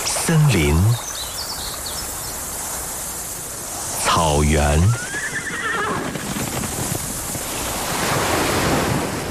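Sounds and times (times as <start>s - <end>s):
speech: 0.3s - 1.1s, 4.3s - 5.1s
ocean surf roaring: 2.1s - 9.2s.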